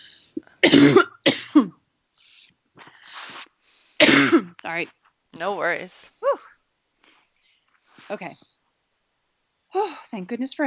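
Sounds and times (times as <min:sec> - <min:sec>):
speech: 0:00.6 - 0:01.2, 0:04.7 - 0:06.5, 0:08.1 - 0:08.6, 0:10.1 - 0:10.6
loud harsh coughs: 0:00.6 - 0:01.8, 0:04.0 - 0:04.6.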